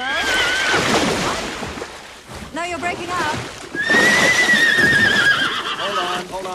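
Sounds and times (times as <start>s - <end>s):
horse whinnying loudly and shrilly: 0.0s - 1.0s, 3.7s - 6.3s
speech: 2.8s - 4.0s, 6.2s - 6.5s.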